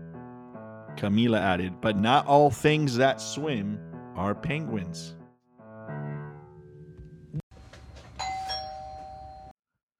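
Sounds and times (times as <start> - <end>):
speech: 1.0 - 5.2
doorbell ringing with chime and buzzy electronic tone: 8.2 - 9.6.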